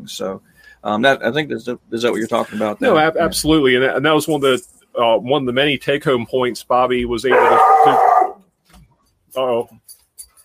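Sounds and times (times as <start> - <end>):
speech: 0.0 - 8.1, 9.3 - 9.9
firehouse dog barking: 7.3 - 8.4.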